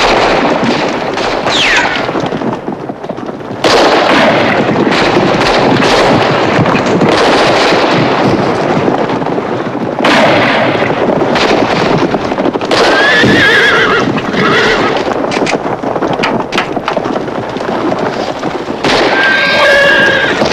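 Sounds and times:
sharp bangs: 0.0s - 2.7s, 3.6s - 9.3s, 9.9s - 13.4s, 14.0s - 20.5s
clatter of horse hooves: 0.0s - 20.5s
rearing horses neighing and whinnying: 12.8s - 15.1s, 19.0s - 20.5s.

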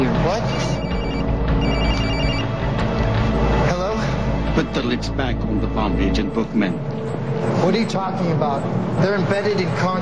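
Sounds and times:
dense noise: 0.0s - 9.9s
speech: 0.3s - 0.8s, 4.7s - 9.9s
cell phone ringing with incoming call: 0.4s - 2.7s.

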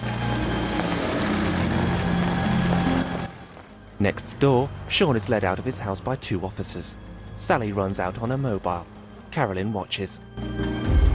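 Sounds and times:
car engine droning as the car drives off: 0.0s - 8.1s
speech: 4.0s - 10.8s.

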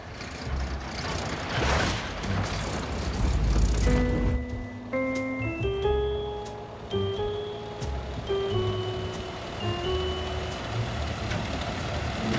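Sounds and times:
car engine rumbling driving down a hill: 0.0s - 12.3s
slow melodic tune of sustained tones: 3.5s - 11.7s.

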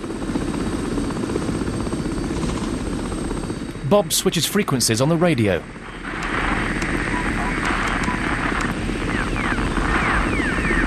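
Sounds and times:
helicopter rotor chop thrum: 0.0s - 10.8s
helicopter constant high whine: 3.4s - 10.8s
speech: 3.9s - 6.2s.

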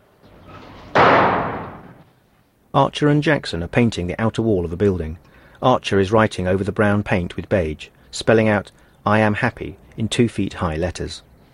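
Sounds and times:
door slamming shut as a prisoner is shoved into a room: 0.8s - 2.0s
speech: 2.8s - 11.3s.

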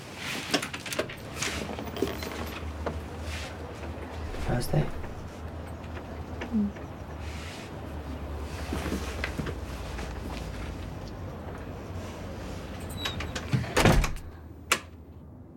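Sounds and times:
steady low room hum: 1.0s - 15.5s
glass-paned door closing with a rattling thud: 4.2s - 5.3s, 13.0s - 14.4s
speech: 4.5s - 5.0s, 6.5s - 6.9s.

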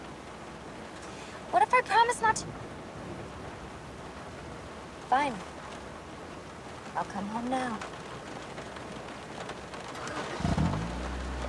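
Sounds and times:
pouring rain: 0.0s - 11.4s
speech: 1.5s - 2.7s, 5.1s - 5.5s, 7.0s - 8.0s
low rumble: 10.3s - 11.4s.

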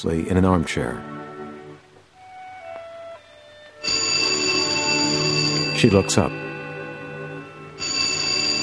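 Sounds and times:
speech: 0.0s - 1.2s, 5.8s - 6.5s
steady low musical tones: 0.0s - 8.6s
telephone bell ringing: 3.8s - 8.6s.

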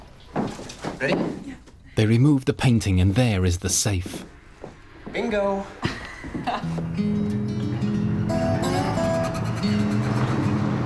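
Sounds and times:
speech: 1.0s - 4.4s, 5.2s - 7.4s
truck engine rumbling while pulling in and parking outside a museum: 4.3s - 10.8s.

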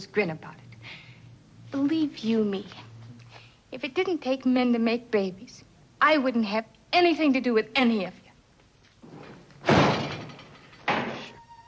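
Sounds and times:
speech: 0.0s - 0.6s, 1.7s - 2.8s, 3.7s - 8.2s
fridge door being slammed shut in a kitchen: 9.6s - 11.4s
faint high whine: 11.0s - 11.6s.

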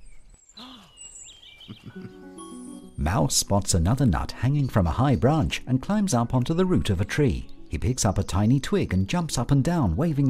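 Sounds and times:
bird chirps and rising and falling whistles: 0.5s - 2.2s
speech: 1.7s - 2.4s, 3.0s - 10.2s.

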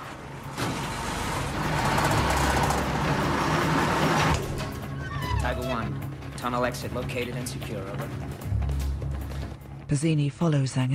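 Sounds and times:
bus engine rumbling while pulling away and driving: 0.0s - 6.6s
speech: 5.6s - 8.4s, 9.9s - 10.9s.

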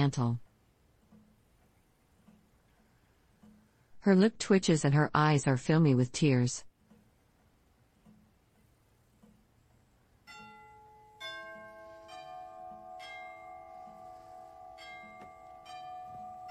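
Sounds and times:
speech: 0.0s - 0.4s, 4.0s - 6.7s
doorbell chiming: 10.3s - 16.4s.

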